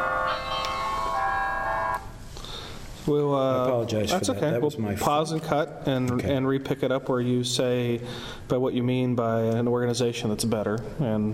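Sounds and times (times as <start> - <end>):
church bells ringing: 0.0 - 2.0
speech: 3.1 - 11.3.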